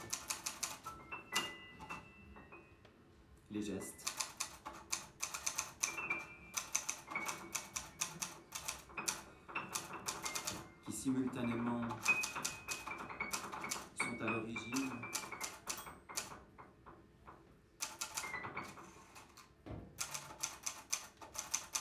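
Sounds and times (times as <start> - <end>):
typewriter keys clacking: 0.0 - 2.1, 4.0 - 16.6, 17.8 - 21.8
speech: 3.5 - 4.1, 11.0 - 12.2.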